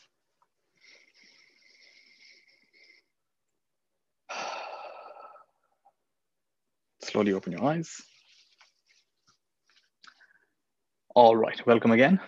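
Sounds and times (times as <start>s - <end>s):
person taking a deep breath during a guided relaxation exercise: 0.7s - 3.3s, 4.3s - 5.8s
speech: 7.2s - 8.1s, 11.2s - 12.2s.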